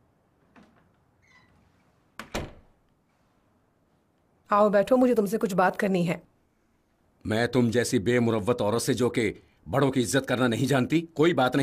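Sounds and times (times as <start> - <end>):
door sliding and shutting with a solid thud: 0.6 - 2.7
brief squeak: 1.2 - 1.6
speech: 4.5 - 6.3, 7.2 - 11.6.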